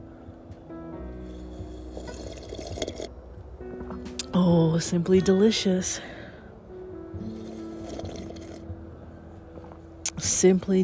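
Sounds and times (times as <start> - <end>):
coffee being poured into a cup: 1.9 - 3.1
speech: 4.4 - 6.1, 10.4 - 10.8.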